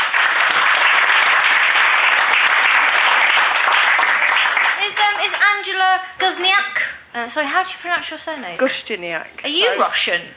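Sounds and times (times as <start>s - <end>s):
audience applause at a live panel show: 0.0s - 5.6s
speech: 5.6s - 10.3s.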